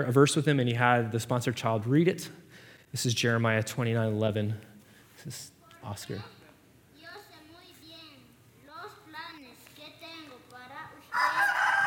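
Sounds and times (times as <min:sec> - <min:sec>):
speech: 0:00.0 - 0:06.4
child speaking: 0:05.6 - 0:11.7
rooster crowing: 0:11.1 - 0:11.8.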